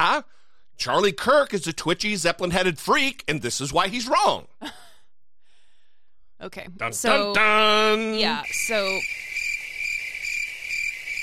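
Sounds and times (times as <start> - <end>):
speech: 0.2 - 4.8, 6.4 - 9.2
cricket chirping: 8.3 - 11.2.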